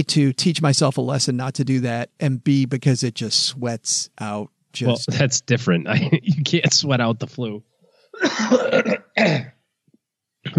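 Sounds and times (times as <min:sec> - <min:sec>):
speech: 0:00.0 - 0:09.5
wet phlegmy cough clearing mucus from the throat: 0:08.2 - 0:09.6.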